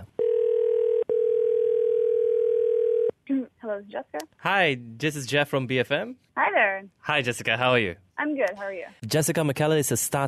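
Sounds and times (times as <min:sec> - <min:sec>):
steady telephone dial tone: 0:00.2 - 0:03.1
speech: 0:03.3 - 0:10.2.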